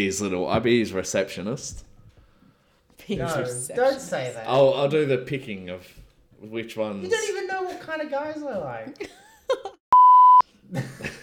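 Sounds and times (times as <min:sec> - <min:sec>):
speech: 0:00.0 - 0:01.9, 0:03.0 - 0:09.8, 0:10.7 - 0:11.2
censor bleep over a word: 0:09.9 - 0:10.4.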